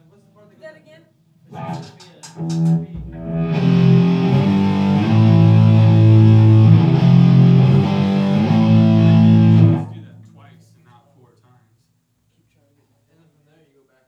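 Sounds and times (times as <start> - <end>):
heavily distorted overdriven electric guitar playing sustained chords: 1.5 - 10.4.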